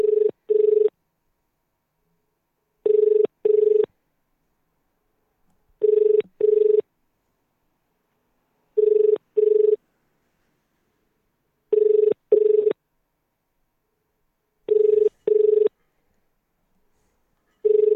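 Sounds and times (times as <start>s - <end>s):
double-ring phone ringback tone: 0.0s - 0.9s, 2.8s - 3.9s, 5.8s - 6.8s, 8.8s - 9.8s, 11.7s - 12.8s, 14.7s - 15.8s, 17.6s - 17.9s.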